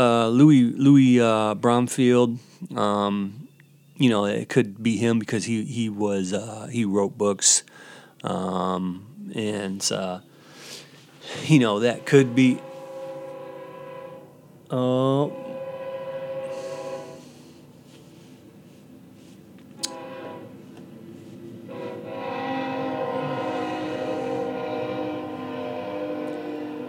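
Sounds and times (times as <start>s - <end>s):
speech: 0.0s - 3.4s, 4.0s - 10.3s, 11.3s - 12.7s, 14.7s - 15.4s
loud brief train horn blast: 11.2s - 17.8s, 19.8s - 20.7s, 21.5s - 26.8s
train rolling past with a rumbling drone: 11.2s - 19.1s, 19.8s - 26.8s.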